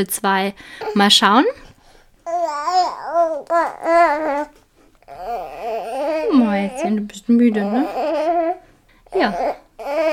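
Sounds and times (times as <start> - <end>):
speech: 0.0 - 1.6, 2.4 - 10.1
baby babbling: 2.2 - 10.1.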